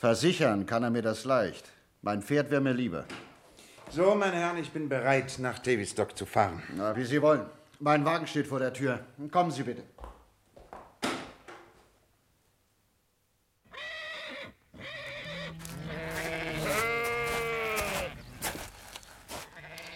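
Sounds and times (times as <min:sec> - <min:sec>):
speech: 0:00.0 - 0:03.3, 0:03.9 - 0:10.1
sheep bleating in a paddock: 0:13.7 - 0:19.9.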